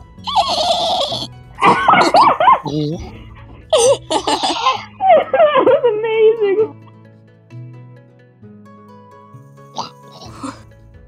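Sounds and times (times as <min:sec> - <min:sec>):
person imitating a dolphin with squeaky chatters and warbling chirps: 0:00.2 - 0:01.3, 0:01.9 - 0:03.1, 0:03.7 - 0:05.0, 0:09.8 - 0:10.6
laughter: 0:01.6 - 0:06.7
speech: 0:02.7 - 0:03.2.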